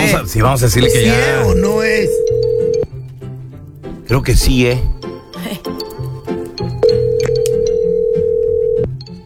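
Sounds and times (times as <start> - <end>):
speech: 0.2 - 2.4, 4.1 - 5.8
phone line ringback tone of an outgoing call: 0.6 - 2.9, 5.8 - 9.0.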